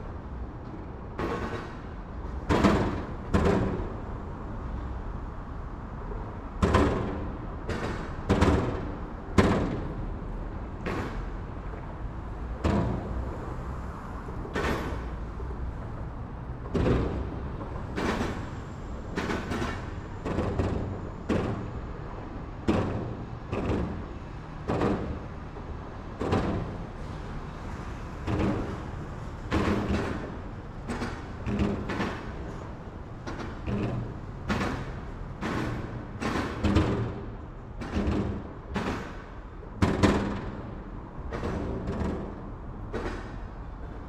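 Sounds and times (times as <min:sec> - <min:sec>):
moderate urban traffic: 0:00.0 - 0:44.0.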